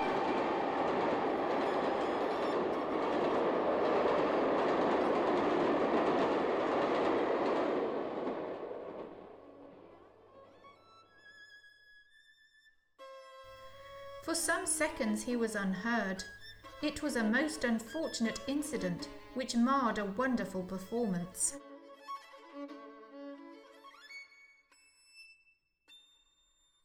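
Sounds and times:
high steam train whistle: 0.0 - 4.0, 13.6 - 21.6
express steam train on the London North Eastern Railway line passing: 0.0 - 10.2, 13.6 - 21.6
speech: 14.4 - 21.7.

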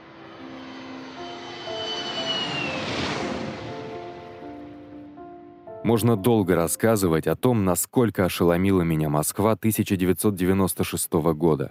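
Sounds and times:
jet airliner engines roaring with a high whine during flight: 0.0 - 5.0
speech: 5.8 - 11.6.

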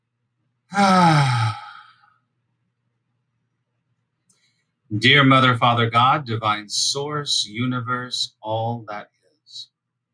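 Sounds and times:
speech: 0.7 - 1.2, 4.9 - 9.7
big deep breath let out as a long voiced sigh: 0.7 - 2.2.

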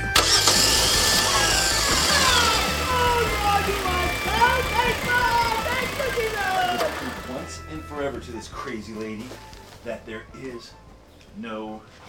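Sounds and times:
car engine cranking, idling and revving: 0.1 - 7.5
speech: 8.3 - 12.0.

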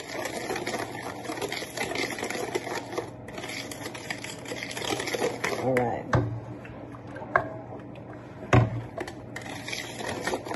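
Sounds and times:
whisk beating a mixture in a bowl: 0.0 - 6.2, 8.9 - 10.5.

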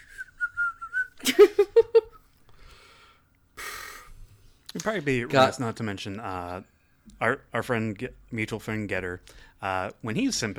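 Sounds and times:
person whistling a short wavering tune: 0.0 - 1.2
laughter: 1.1 - 2.2
speech: 4.8 - 10.5.

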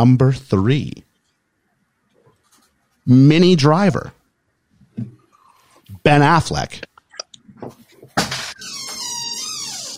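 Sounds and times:
speech: 0.0 - 1.1, 3.1 - 4.2, 5.0 - 5.2, 6.0 - 6.9
door creaking open: 8.2 - 9.9.

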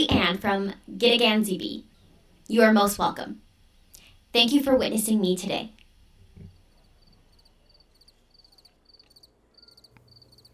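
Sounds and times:
speech: 0.0 - 1.9, 2.5 - 3.4, 4.3 - 5.8
quiet hum: 0.0 - 10.5
crickets chirping outdoors at night: 6.6 - 10.5.

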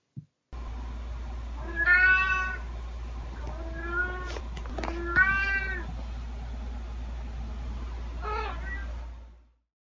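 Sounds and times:
steady low hum: 0.5 - 9.6
domestic cat meowing drawn-out and wavering: 1.6 - 2.7, 3.3 - 5.9, 8.2 - 8.9.

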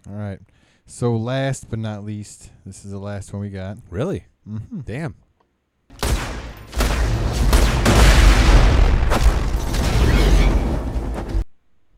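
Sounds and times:
speech: 0.0 - 5.2
video game gun firing in a rapid burst: 5.9 - 10.2
booming video game explosions: 5.9 - 11.4.

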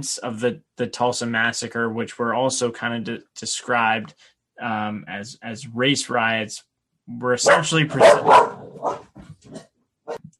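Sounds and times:
speech: 0.0 - 9.7
dog barking: 7.4 - 10.3.

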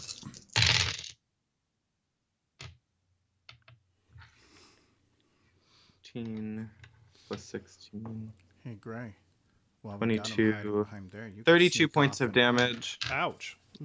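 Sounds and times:
dice clattering across a hard table: 0.0 - 1.2, 12.4 - 13.2
speech: 6.1 - 9.2, 9.8 - 13.8.

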